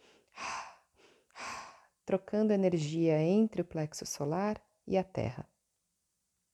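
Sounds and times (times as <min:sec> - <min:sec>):
slow deep circular breaths during meditation: 0:00.0 - 0:02.0
speech: 0:02.1 - 0:05.5.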